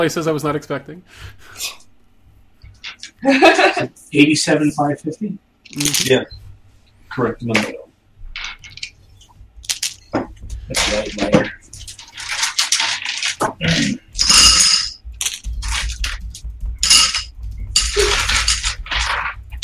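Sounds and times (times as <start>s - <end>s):
speech: 0.0s - 1.8s, 3.2s - 6.4s, 7.2s - 7.8s, 10.7s - 11.7s, 13.4s - 14.0s
laughter: 3.2s - 3.9s
dice rattling: 5.7s - 6.2s, 8.4s - 9.0s, 9.6s - 10.1s, 10.7s - 13.5s, 14.2s - 19.6s.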